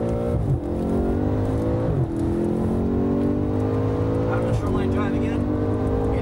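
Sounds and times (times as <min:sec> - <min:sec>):
car engine screaming at high revs lapping a racing course: 0:00.0 - 0:06.2.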